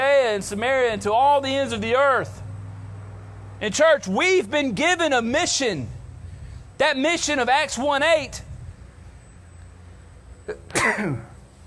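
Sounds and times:
speech: 0.3 - 2.5, 3.6 - 6.0, 6.8 - 8.5, 10.5 - 11.3
sharp sneeze: 10.5 - 11.4.

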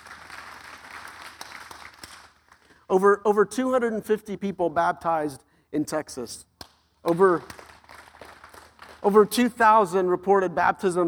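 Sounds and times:
church audience clapping: 0.0 - 2.8, 6.6 - 9.3
speech: 2.9 - 7.6, 9.0 - 11.0.

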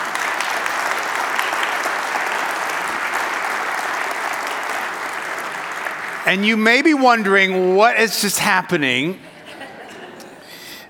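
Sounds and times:
audience applauding: 0.0 - 7.7
speech: 6.3 - 9.3
laughter: 9.0 - 10.5.

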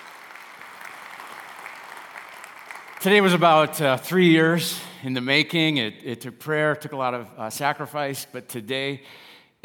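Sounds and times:
sizable audience applauding in a room: 0.0 - 3.7
speech: 3.0 - 9.6.

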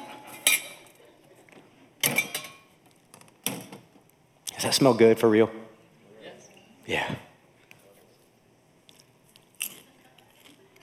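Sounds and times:
speech: 4.6 - 5.6
popcorn being chewed in brittle bites: 8.9 - 10.8.

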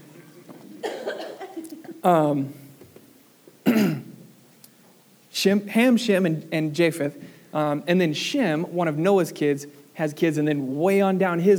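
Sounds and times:
coughing and throat clearing: 0.1 - 2.4, 3.6 - 4.3
speech: 2.0 - 2.6, 5.4 - 11.5.

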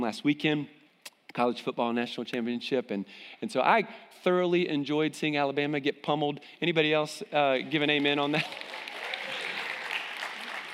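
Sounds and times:
speech: 0.0 - 0.8, 1.4 - 8.8
audience applause: 7.6 - 10.7.

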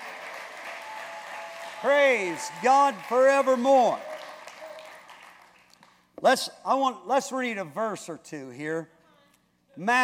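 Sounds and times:
congregation clapping hands: 0.0 - 6.1
speech: 1.8 - 4.1, 6.2 - 9.0, 9.8 - 10.0.

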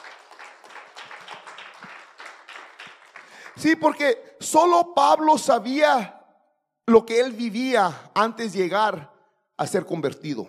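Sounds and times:
audience applauding: 0.0 - 3.9
speech: 3.6 - 6.2, 6.9 - 10.4.

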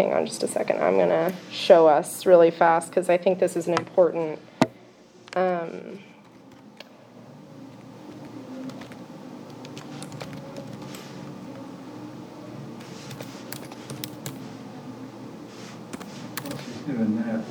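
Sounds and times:
speech: 0.0 - 4.5, 5.3 - 6.1, 16.9 - 17.4
low steady hum: 0.0 - 17.4
typing on a computer keyboard: 8.6 - 11.0, 13.1 - 14.4, 16.0 - 16.6.

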